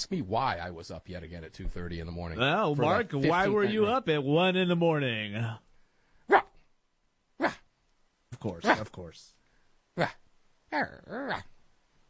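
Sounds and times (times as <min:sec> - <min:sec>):
speech: 0:00.0 - 0:05.7, 0:08.4 - 0:09.4, 0:10.0 - 0:11.5
person imitating small Shih Tzu dog's yappy barking: 0:06.3 - 0:06.6, 0:07.4 - 0:07.7, 0:10.0 - 0:11.6.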